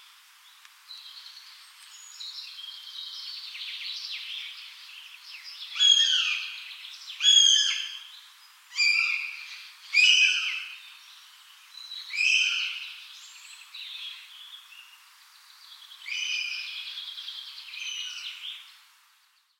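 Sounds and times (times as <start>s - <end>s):
northern goshawk harsh screechy wailing calls: 5.8s - 6.6s, 7.2s - 8.0s, 8.7s - 10.7s, 12.1s - 12.8s.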